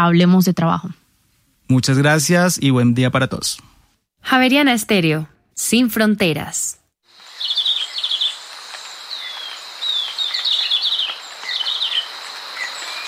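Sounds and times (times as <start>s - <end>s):
speech: 0.0s - 1.0s, 1.7s - 6.8s
insects humming: 7.1s - 13.0s
verderón castaño songbird trilling: 7.2s - 13.0s.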